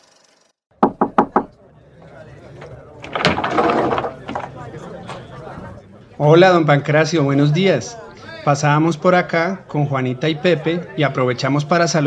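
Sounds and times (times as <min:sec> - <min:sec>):
knocking on the door of a house: 0:00.8 - 0:01.5
rustling and shuffling: 0:02.5 - 0:05.4
speech: 0:06.2 - 0:12.0.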